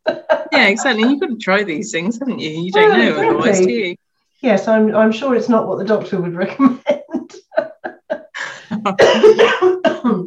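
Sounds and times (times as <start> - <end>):
laughter: 0.0 - 1.2, 6.5 - 9.0
speech: 0.6 - 7.0, 8.8 - 9.7
coughing fit: 8.9 - 10.2.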